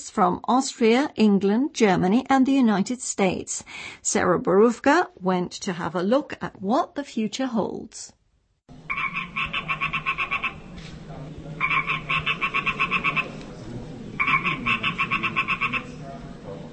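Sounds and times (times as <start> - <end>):
speech: 0.0 - 8.2
frogs croaking in an art installation: 8.8 - 10.7, 11.6 - 13.4, 14.1 - 16.0
low murmur: 9.2 - 16.7.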